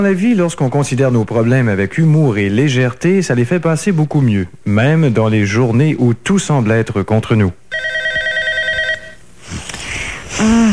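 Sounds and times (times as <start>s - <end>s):
speech: 0.0s - 8.0s, 10.4s - 10.7s
telephone ringing with electronic tone: 7.7s - 9.3s.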